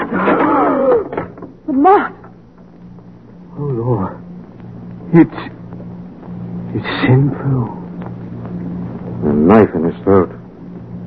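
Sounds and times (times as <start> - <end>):
door creaking open: 0.0 - 2.7
speech: 1.8 - 2.2, 3.8 - 4.2, 5.1 - 5.6, 6.8 - 7.8, 9.2 - 10.4.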